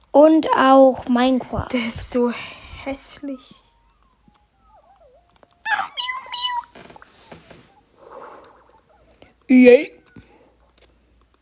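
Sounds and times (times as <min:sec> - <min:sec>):
speech: 0:00.2 - 0:03.6, 0:09.5 - 0:10.0
cat meowing in a cat food advertisement: 0:05.7 - 0:06.9
soft scuffling: 0:06.3 - 0:08.6
rustle: 0:06.6 - 0:08.6.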